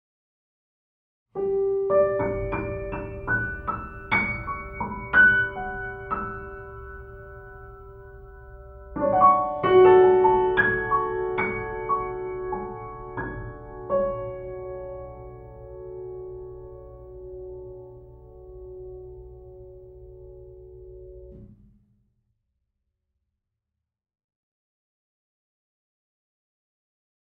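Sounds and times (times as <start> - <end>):
mellow grand piano: 1.4 - 21.5.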